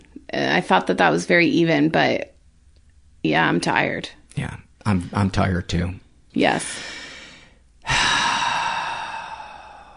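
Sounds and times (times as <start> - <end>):
speech: 0.3 - 2.3, 3.2 - 7.0
deep breath with long airy exhale: 6.6 - 9.9.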